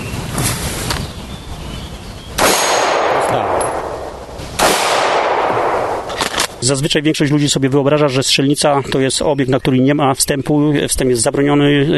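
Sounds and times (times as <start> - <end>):
hiss: 0.0 - 10.8
pistol shots at a shooting range: 2.4 - 6.6
speech: 6.6 - 11.9.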